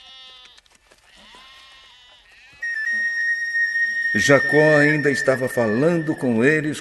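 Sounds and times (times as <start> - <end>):
sheep and goats bleating: 0.0 - 4.0
speech: 4.1 - 6.7.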